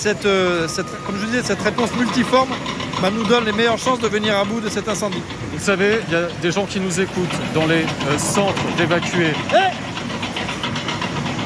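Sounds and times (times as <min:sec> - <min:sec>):
speech: 0:00.0 - 0:09.8
tractor passing by during wildfire firefighting operations: 0:00.0 - 0:11.4.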